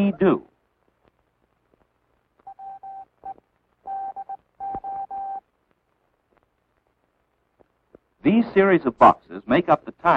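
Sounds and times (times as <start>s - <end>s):
speech: 0.0s - 0.5s, 8.2s - 10.1s
faint hiss: 0.0s - 10.1s
telegraph key sending International Morse code tones: 2.5s - 5.4s.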